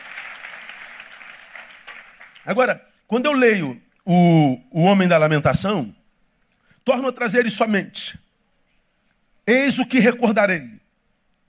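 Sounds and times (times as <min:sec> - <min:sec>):
crowd clapping in applause: 0:00.0 - 0:02.7
speech: 0:02.4 - 0:06.0, 0:06.8 - 0:08.2, 0:09.5 - 0:10.8.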